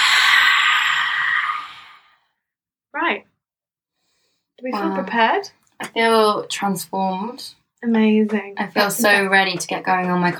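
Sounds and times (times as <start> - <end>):
person breathing through the mouth in a rasping masked-villain style: 0.0 - 2.2
speech: 3.0 - 3.3, 4.6 - 10.3.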